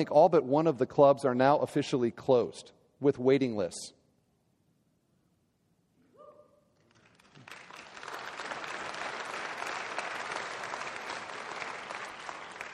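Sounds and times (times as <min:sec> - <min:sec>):
speech: 0:00.0 - 0:04.0
large audience clapping: 0:06.8 - 0:12.7.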